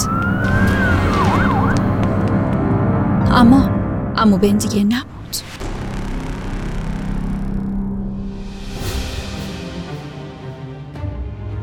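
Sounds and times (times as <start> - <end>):
police car siren wailing late at night: 0.0 - 2.6
heavy traffic rumble: 0.0 - 8.7
low engine noise: 0.0 - 9.3
speech: 4.2 - 5.5.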